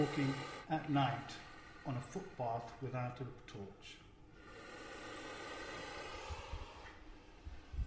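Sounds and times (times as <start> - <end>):
captive puff adder puffing: 0.0 - 2.8, 4.4 - 7.6
speech: 0.0 - 4.0.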